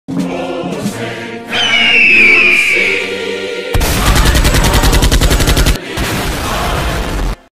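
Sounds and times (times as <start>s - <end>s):
national anthem music: 0.1s - 7.0s
bald eagle screech: 1.5s - 3.1s
gunshots: 3.8s - 6.8s
explosion: 3.8s - 7.5s.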